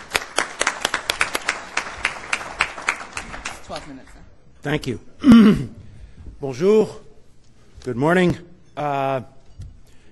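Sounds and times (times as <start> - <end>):
small audience clapping for a speaker: 0.0 - 4.2
speech: 3.7 - 5.8, 6.4 - 7.0, 7.8 - 9.4.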